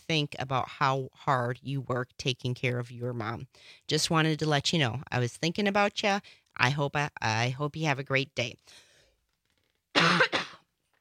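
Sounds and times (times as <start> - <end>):
speech: 0.1 - 8.8
person clearing throat from a tickle in the throat: 10.0 - 10.6
person coughing from a tickle in the throat: 10.0 - 10.7.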